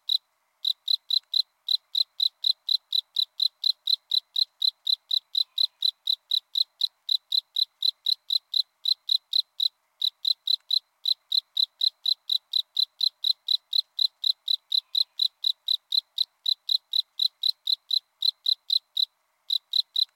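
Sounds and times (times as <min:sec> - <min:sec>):
Northern spring field cricket Gryllus veletis chirping: 0:00.0 - 0:20.1.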